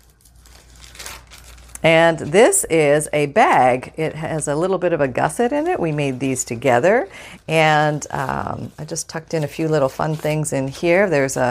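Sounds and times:
thin tracing paper page being turned, crinkling and rustling: 0:00.0 - 0:02.3, 0:05.3 - 0:07.0, 0:07.6 - 0:11.4
low steady hum: 0:00.0 - 0:11.4
speech: 0:01.8 - 0:11.4.

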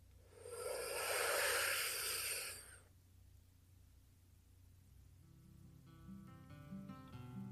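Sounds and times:
deep meditative breath drawn in: 0:00.2 - 0:02.9.

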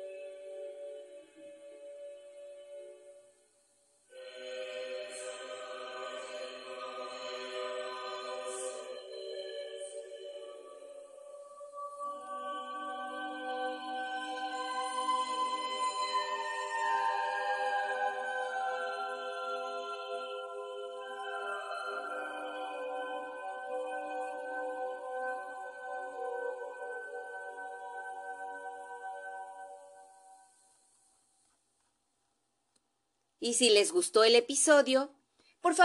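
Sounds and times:
choral piece sung by many voices: 0:04.1 - 0:29.8
speech: 0:33.4 - 0:35.8.

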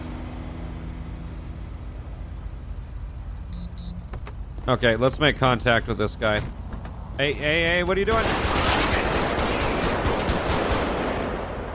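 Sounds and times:
speech: 0:04.7 - 0:06.6, 0:07.2 - 0:08.5
rapid gunfire in a police video game: 0:08.1 - 0:11.4.

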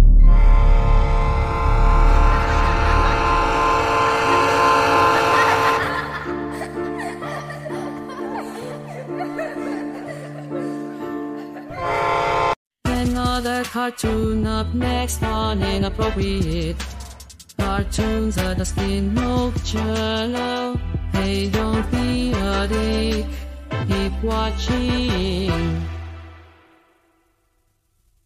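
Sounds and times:
train horn blaring: 0:00.2 - 0:06.1, 0:11.7 - 0:12.6
train rumbling: 0:00.2 - 0:06.2
faint laughter-like sounds: 0:04.9 - 0:12.0
speech: 0:13.9 - 0:16.9, 0:17.7 - 0:25.9.

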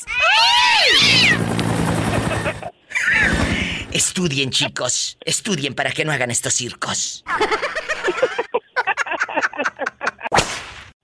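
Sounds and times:
high wailing meow-like cry: 0:00.0 - 0:01.4, 0:02.9 - 0:03.8
helicopter sound effect with rotor chopping thumps: 0:00.8 - 0:04.2
laughter: 0:02.0 - 0:03.7, 0:07.3 - 0:10.4
speech: 0:04.0 - 0:08.3.

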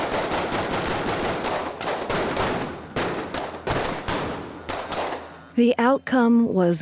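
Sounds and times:
automatic gunfire exchange: 0:00.0 - 0:05.3
speech: 0:05.6 - 0:06.8.

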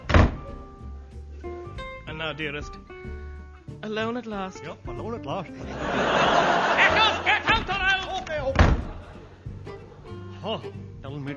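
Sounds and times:
door slamming shut: 0:00.0 - 0:00.6, 0:07.4 - 0:09.1
speech: 0:02.2 - 0:03.2, 0:03.9 - 0:07.8, 0:10.4 - 0:11.3
laughter: 0:05.6 - 0:10.8.

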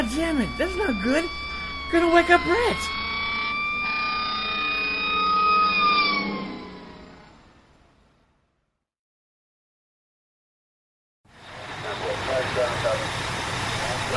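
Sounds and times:
emergency vehicle sirens wailing: 0:00.0 - 0:08.2, 0:11.3 - 0:14.1
speech: 0:00.2 - 0:03.0.

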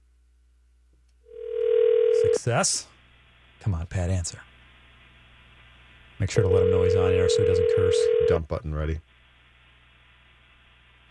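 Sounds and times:
telephone ringing tone after a call is dialed: 0:01.3 - 0:02.4, 0:06.4 - 0:08.4
speech: 0:02.4 - 0:02.9, 0:03.6 - 0:04.5, 0:06.2 - 0:09.2.

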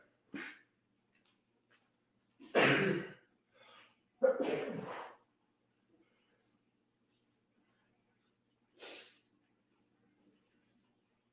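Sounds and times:
sneeze: 0:00.3 - 0:00.7, 0:02.4 - 0:03.2, 0:04.2 - 0:05.2
sharp intake of breath: 0:08.8 - 0:09.2.

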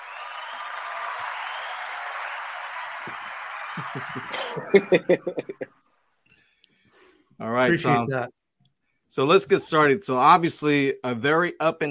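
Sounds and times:
group applauding to welcome a guest: 0:00.0 - 0:05.6, 0:07.7 - 0:08.1
people laughing: 0:03.7 - 0:05.6, 0:07.6 - 0:08.2, 0:09.2 - 0:11.8
speech: 0:03.8 - 0:05.8, 0:07.4 - 0:08.4, 0:09.1 - 0:11.8.

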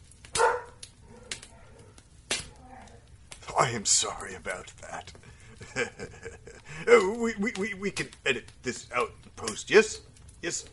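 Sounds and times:
dog barking: 0:00.3 - 0:01.9
speech: 0:03.6 - 0:10.7
laughter: 0:05.4 - 0:06.9.

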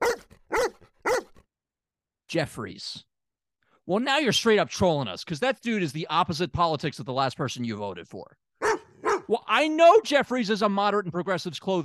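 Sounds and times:
dog barking: 0:00.0 - 0:01.4, 0:08.6 - 0:09.3
speech: 0:02.3 - 0:03.1, 0:03.9 - 0:08.4, 0:09.3 - 0:11.8.

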